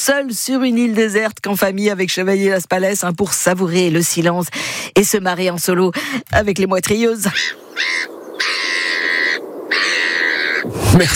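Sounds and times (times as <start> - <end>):
speech: 0.0 - 8.2, 10.7 - 11.1
seagulls calling: 7.2 - 11.1.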